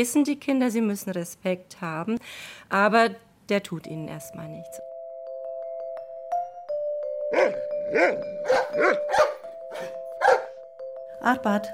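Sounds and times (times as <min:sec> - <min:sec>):
speech: 0:00.0 - 0:04.9, 0:07.3 - 0:09.9, 0:11.2 - 0:11.7
office dog barking: 0:07.4 - 0:10.6.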